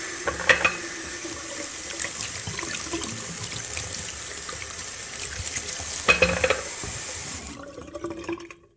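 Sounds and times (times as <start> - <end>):
water running from a bathroom sink faucet: 0.0 - 8.2
hands washing under a bathroom sink faucet: 0.6 - 7.6.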